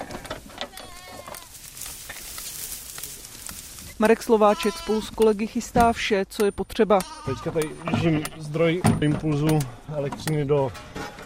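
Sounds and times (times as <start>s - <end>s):
steady rustling of sheep grazing tall grass: 0.0s - 5.7s
sheep bleating while running from a transport trailer into an orchard enclosure: 0.6s - 1.5s, 4.3s - 5.1s, 6.9s - 8.5s
speech: 4.0s - 11.0s.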